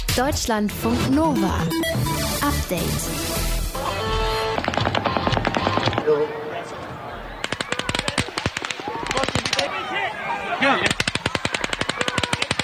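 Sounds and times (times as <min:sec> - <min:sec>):
speech: 0:00.2 - 0:03.5, 0:06.1 - 0:06.8
rapid automatic gunfire: 0:04.5 - 0:06.2, 0:07.4 - 0:09.7, 0:10.8 - 0:12.6
voices: 0:05.9 - 0:12.6.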